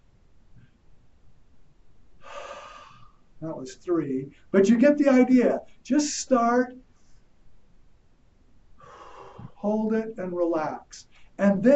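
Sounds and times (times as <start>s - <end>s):
strong airy breath blown out in a breathing exercise: 2.2s - 3.1s, 8.8s - 9.6s
quiet breathing in a breathing exercise: 2.2s - 3.4s, 4.3s - 4.6s, 6.8s - 7.4s, 8.7s - 9.7s, 11.0s - 11.4s
speech: 3.4s - 6.8s, 9.6s - 11.7s.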